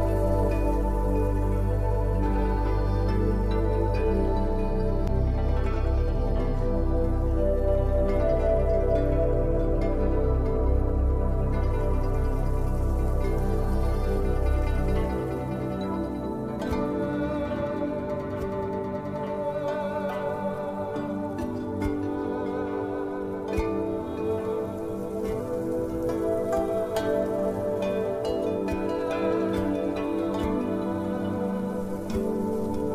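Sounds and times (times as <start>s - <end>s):
deep bass layer: 0.0s - 19.3s
faint plucked notes: 0.0s - 32.9s
soft temple-style music with bamboo flute, guzheng and erhu: 0.0s - 32.9s.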